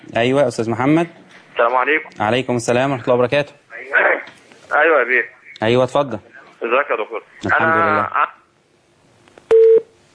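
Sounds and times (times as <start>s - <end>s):
speech: 0.0s - 4.0s, 4.7s - 8.4s
telephone tone after a dropped call: 9.5s - 9.9s.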